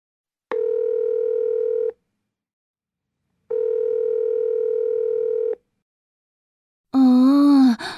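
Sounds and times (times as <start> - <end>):
telephone ringback tone as a call goes unanswered: 0.6 - 2.0, 3.5 - 5.6.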